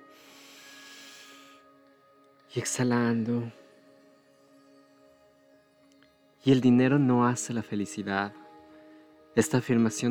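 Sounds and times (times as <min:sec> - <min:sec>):
single long deep inhale: 0:00.0 - 0:01.8
soft sustained music tones: 0:00.0 - 0:10.0
speech: 0:02.5 - 0:03.6, 0:06.4 - 0:08.4, 0:09.4 - 0:10.0.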